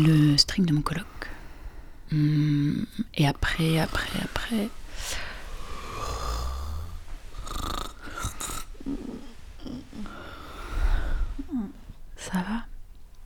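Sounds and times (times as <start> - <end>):
speech: 0.0 - 1.2, 2.1 - 5.3, 12.2 - 12.7
person snoring loudly: 4.9 - 11.8.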